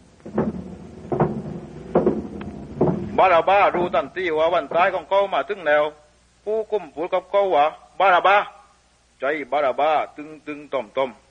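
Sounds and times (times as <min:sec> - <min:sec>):
heavy prison cell door being opened by a jailer: 0:00.0 - 0:04.9
speech: 0:03.2 - 0:08.6, 0:09.2 - 0:11.2.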